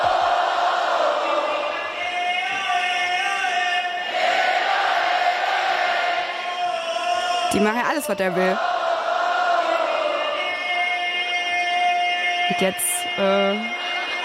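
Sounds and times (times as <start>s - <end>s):
large concert crowd shouting and chanting along with the MC: 0.0s - 14.2s
speech: 7.6s - 8.7s, 12.6s - 14.0s.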